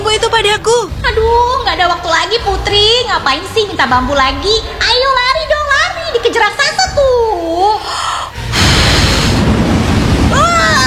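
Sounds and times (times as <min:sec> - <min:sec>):
speech: 0:00.2 - 0:05.2, 0:06.3 - 0:08.0
strong gust of wind: 0:08.4 - 0:10.8.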